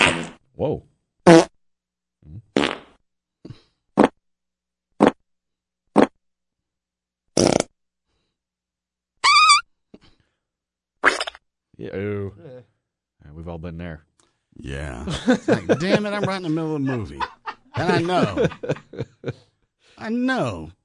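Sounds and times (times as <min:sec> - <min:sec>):
fart sound effects played from a sound effects computer: 0:00.0 - 0:00.5, 0:01.3 - 0:01.5, 0:02.2 - 0:03.0, 0:04.0 - 0:04.2, 0:05.0 - 0:05.2, 0:05.9 - 0:06.2, 0:07.4 - 0:07.8, 0:11.0 - 0:11.4
speech: 0:00.6 - 0:01.4, 0:11.8 - 0:12.4, 0:13.5 - 0:20.8
laughter: 0:14.8 - 0:19.5.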